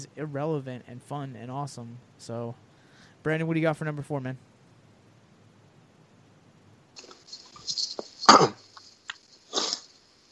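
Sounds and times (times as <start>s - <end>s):
speech: 0.0s - 4.5s
person coughing on a piece of pretzel stuck in the throat: 8.2s - 8.7s.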